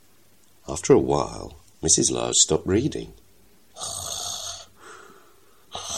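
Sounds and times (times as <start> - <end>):
speech: 0.7 - 3.2
person imitating snoring: 3.8 - 4.7, 5.7 - 5.9.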